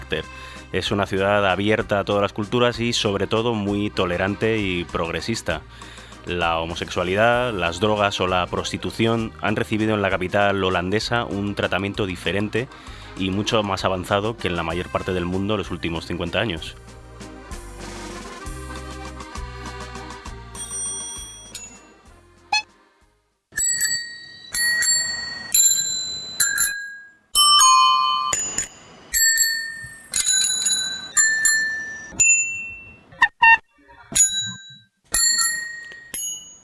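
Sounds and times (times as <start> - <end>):
speech: 0.1 - 16.9
many bicycle bells ringing in city street: 20.6 - 21.9, 23.6 - 33.1, 34.2 - 36.6.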